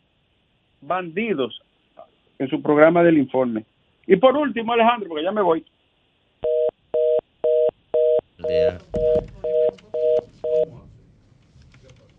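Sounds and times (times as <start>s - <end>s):
speech: 0.8s - 1.6s, 2.4s - 5.7s, 8.5s - 9.3s
malfunctioning telephone two-tone beeps: 6.4s - 10.7s
voices: 8.4s - 12.1s.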